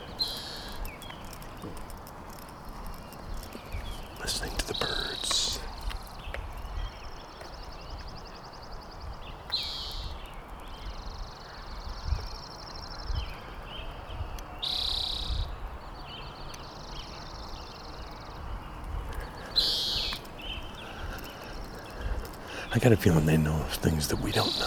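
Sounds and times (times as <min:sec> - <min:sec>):
rustling background of wind or other noise: 0:00.0 - 0:08.2, 0:18.3 - 0:24.6
birds calling outdoors: 0:00.0 - 0:24.6
speech: 0:22.8 - 0:24.6.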